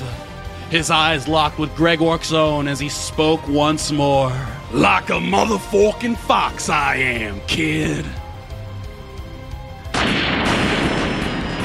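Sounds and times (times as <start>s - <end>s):
speech: 0.7s - 8.2s
loud cannon blast: 9.9s - 11.6s.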